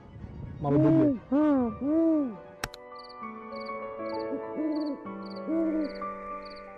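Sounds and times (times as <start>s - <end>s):
speech: 0.6s - 2.5s
sharp click: 2.6s - 2.8s
several Eurasian eagle owls hooting in a tree at night in Kikinda Serbia: 4.2s - 6.6s.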